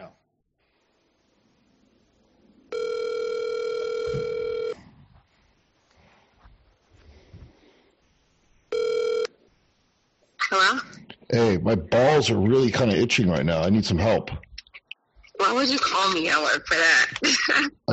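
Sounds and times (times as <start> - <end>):
faint noise: 0.0 - 17.9
outgoing call phone ringback tone: 2.7 - 4.8, 8.7 - 9.3
speech: 11.4 - 14.5, 15.6 - 17.9.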